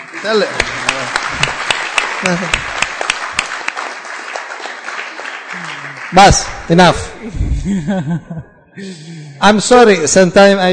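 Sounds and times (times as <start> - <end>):
audience applause at a religious discourse: 0.0 - 6.9
speech: 0.2 - 1.5, 2.2 - 2.8, 5.6 - 10.7
laughter: 2.2 - 2.9, 7.2 - 8.7.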